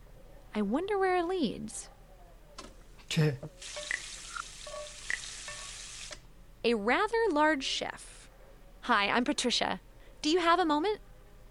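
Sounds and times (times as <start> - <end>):
speech: 0.6 - 2.0, 3.1 - 4.0, 6.6 - 8.2, 8.8 - 11.1
food frying in a restaurant kitchen: 3.6 - 6.2.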